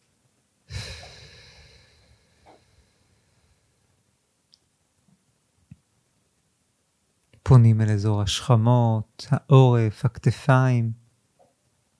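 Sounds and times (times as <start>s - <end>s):
deep breath drawn in and released during mindfulness meditation: 0.7s - 3.9s
faint soft clicks: 4.5s - 4.7s
speech: 7.5s - 11.0s.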